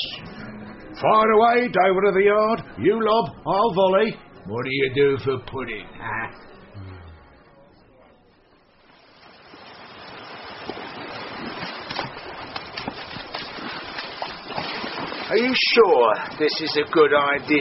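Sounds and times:
speech: 0:01.0 - 0:06.5, 0:15.3 - 0:17.5
sea waves washing onto a shore: 0:08.9 - 0:17.5.

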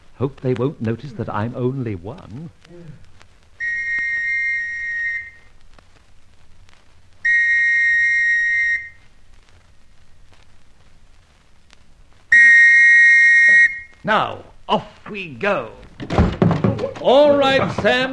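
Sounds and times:
speech: 0:00.2 - 0:03.1, 0:14.0 - 0:18.1
shrill police whistle being blown: 0:03.6 - 0:05.5, 0:07.2 - 0:09.0, 0:12.3 - 0:14.0.

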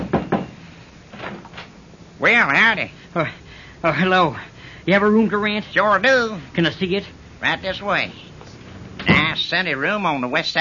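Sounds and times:
knocking on a wooden door of a place with rooms to rent: 0:00.0 - 0:00.5
speech: 0:02.2 - 0:08.2, 0:09.3 - 0:10.5.

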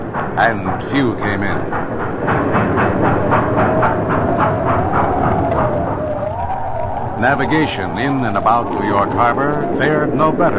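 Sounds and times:
slowing train wheels clacking on rails: 0:00.0 - 0:10.5
speech: 0:00.2 - 0:03.7, 0:07.2 - 0:10.5
thin drawn-out squeal of a slowing train: 0:02.4 - 0:10.5.

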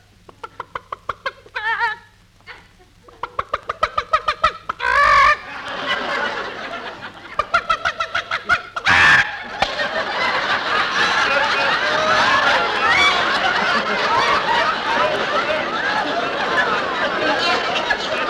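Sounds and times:
hens clucking while being fed corn: 0:00.0 - 0:18.2
hen squawking: 0:00.2 - 0:05.7, 0:07.2 - 0:09.6, 0:11.6 - 0:14.9
laughter: 0:01.6 - 0:18.2.

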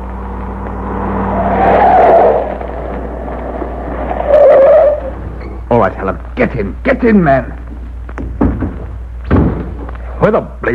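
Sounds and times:
car tires skidding as the vehicle pulls up: 0:00.0 - 0:05.5
car engine rumbling: 0:00.0 - 0:05.8
speech: 0:05.9 - 0:07.6, 0:10.3 - 0:10.7.

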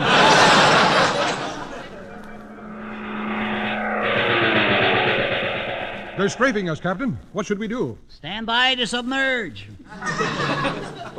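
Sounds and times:
laughter: 0:00.0 - 0:02.1, 0:09.9 - 0:11.1
enemy propeller airplane roaring past toward a ship: 0:01.1 - 0:06.7
speech: 0:06.2 - 0:11.1.

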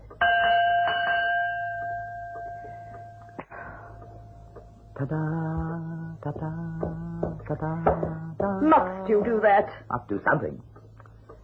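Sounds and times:
dinner gong struck in a house to call people to a meal: 0:00.1 - 0:05.0
speech: 0:05.0 - 0:10.7.

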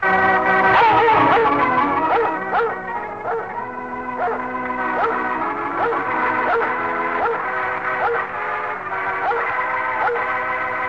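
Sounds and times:
music: 0:00.0 - 0:10.8
dog barking: 0:00.7 - 0:03.5, 0:04.2 - 0:04.4, 0:05.0 - 0:07.4, 0:08.0 - 0:08.3, 0:09.2 - 0:10.3.

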